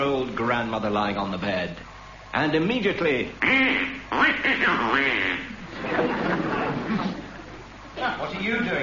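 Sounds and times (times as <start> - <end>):
speech: 0.0 - 6.6
person's voice imitating nasal squawky duck quacking: 3.4 - 5.6
laughter: 5.5 - 7.8.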